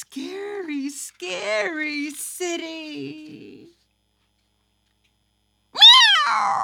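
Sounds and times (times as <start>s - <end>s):
speech: 0.9s - 3.8s, 6.3s - 6.6s
cat meowing: 5.8s - 6.6s.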